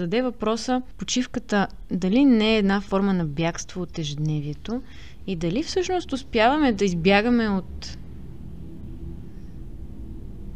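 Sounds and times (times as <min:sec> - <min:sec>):
speech: 0:00.0 - 0:08.0
airplane flying overhead: 0:07.6 - 0:10.5.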